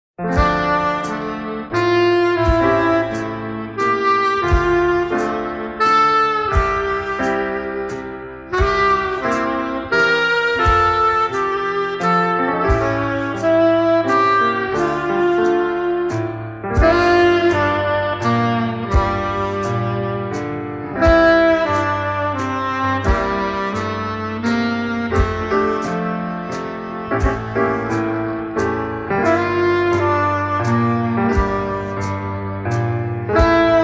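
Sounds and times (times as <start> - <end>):
drums: 0.2 - 33.8
piano: 0.2 - 33.8
saxophone: 0.2 - 33.8.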